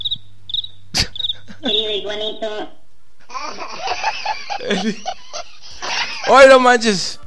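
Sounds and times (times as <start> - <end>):
cricket chirping: 0.0 - 1.8
speech: 1.6 - 2.8, 3.4 - 5.2, 5.8 - 7.2
laughter: 3.3 - 6.6.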